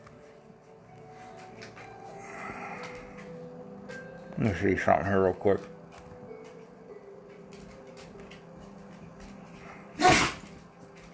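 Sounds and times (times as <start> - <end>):
speech: 4.4 - 5.8
dog sneezing: 10.0 - 10.5.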